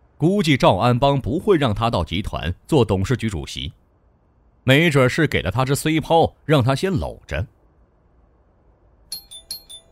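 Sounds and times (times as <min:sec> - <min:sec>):
faint hiss: 0:00.0 - 0:09.8
speech: 0:00.2 - 0:03.8, 0:04.6 - 0:07.6
doorbell ringing with ding-dong chimes: 0:09.1 - 0:09.8.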